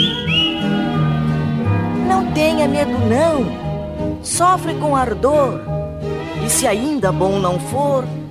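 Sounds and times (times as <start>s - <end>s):
person whistling: 0.0s - 1.2s
musical accompaniment with sustained low tones: 0.0s - 8.2s
speech: 2.6s - 5.7s, 6.4s - 8.2s.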